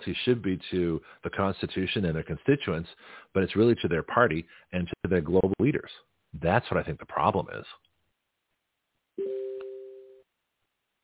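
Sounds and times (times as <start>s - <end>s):
speech: 0.0s - 7.8s
single steady electronic phone notification tone: 9.2s - 10.2s.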